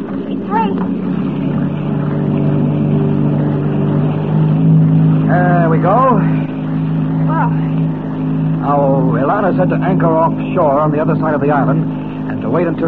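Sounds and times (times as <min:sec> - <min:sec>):
motorboat engine droning: 0:00.0 - 0:12.8
speech: 0:09.5 - 0:12.8.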